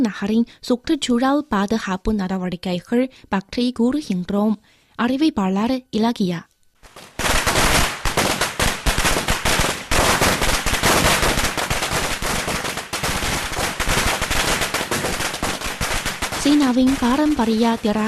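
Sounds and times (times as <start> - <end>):
speech: 0.0 - 7.1, 16.5 - 18.0
strings of plastic firecrackers on building doors in Zhuzhou Hunan China: 6.8 - 18.0.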